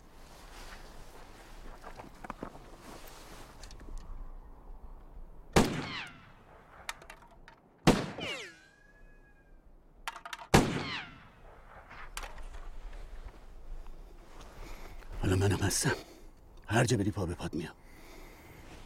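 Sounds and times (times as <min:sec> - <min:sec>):
loud sharp gunshots with decay: 0:05.6 - 0:06.3, 0:07.8 - 0:08.6, 0:10.5 - 0:11.6
speech: 0:15.7 - 0:16.1, 0:16.7 - 0:17.8.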